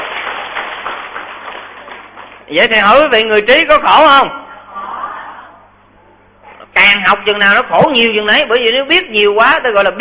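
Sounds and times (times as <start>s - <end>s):
audience applause: 0.0s - 2.5s
speech: 2.5s - 4.4s, 7.1s - 10.0s.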